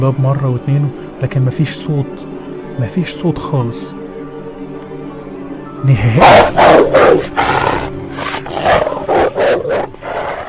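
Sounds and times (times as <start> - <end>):
speech: 0.0 - 4.0, 5.8 - 7.4
loud rough dog vocalizations from a bathroom: 6.2 - 10.4.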